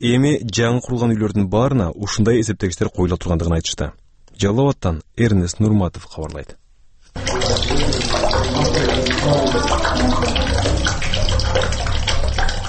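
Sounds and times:
speech: 0:00.0 - 0:11.8
water running from a bathtub tap in an apartment flat: 0:07.1 - 0:12.6.

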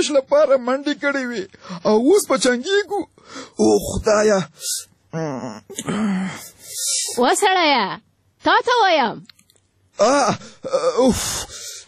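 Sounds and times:
speech: 0:00.0 - 0:09.4, 0:10.0 - 0:11.8
person moaning and crying in sleep from a nightmare: 0:05.1 - 0:06.6, 0:10.0 - 0:11.6.

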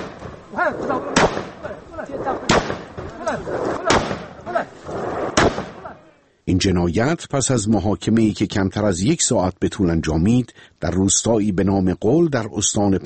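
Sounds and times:
gunshots: 0:00.0 - 0:06.0
voices talking and calling out: 0:00.0 - 0:12.2
speech: 0:00.6 - 0:02.5, 0:03.2 - 0:05.0, 0:06.5 - 0:13.0.

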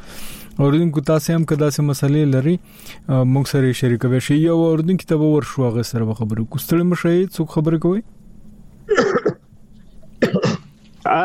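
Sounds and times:
speech: 0:00.6 - 0:08.2, 0:11.0 - 0:11.2
caller coughing over a phone line: 0:08.9 - 0:09.4, 0:10.2 - 0:10.7.

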